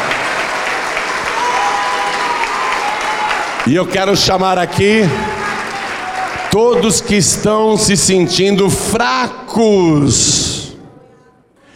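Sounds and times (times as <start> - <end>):
audience at a church service applauding: 0.0 - 8.1
speech: 3.7 - 5.3, 6.5 - 10.6.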